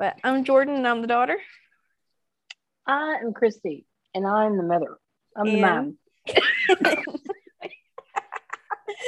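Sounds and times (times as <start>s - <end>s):
speech: 0.0s - 1.6s, 2.9s - 7.3s
woman coughing hard in a fit: 6.3s - 7.4s
laughter: 6.3s - 9.0s.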